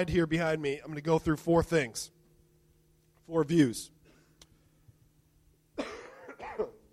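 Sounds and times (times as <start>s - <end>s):
speech: 0.0s - 2.2s, 3.3s - 4.0s
person coughing: 5.8s - 6.9s.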